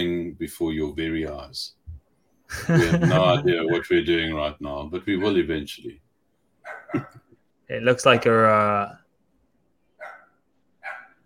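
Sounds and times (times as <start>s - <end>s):
faint room hum: 0.0s - 11.2s
speech: 0.4s - 1.8s, 2.5s - 6.0s, 6.9s - 9.0s
laughter: 2.5s - 3.9s, 6.9s - 7.4s
dog barking: 5.2s - 5.5s, 6.6s - 7.2s, 8.1s - 8.4s, 10.0s - 11.2s.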